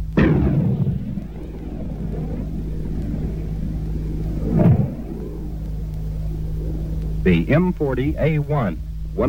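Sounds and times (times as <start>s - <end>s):
105 mm tank gun fired from an M60 main battle tank: 0.0s - 2.8s
steady low drone: 0.0s - 9.2s
speech: 7.2s - 9.2s.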